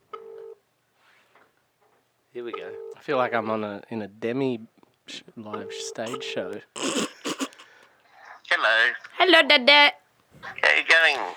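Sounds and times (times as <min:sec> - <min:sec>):
faint room noise: 0:00.0 - 0:11.3
electronic phone ringing tone from a speakerphone: 0:00.1 - 0:00.6, 0:02.5 - 0:03.0, 0:05.6 - 0:06.6
speech: 0:02.3 - 0:07.0, 0:08.6 - 0:11.3.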